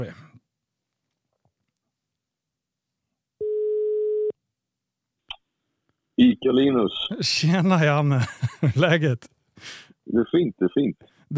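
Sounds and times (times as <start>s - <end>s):
telephone ringback tone: 3.4s - 4.3s
speech: 6.2s - 11.3s
laughter: 8.1s - 9.1s.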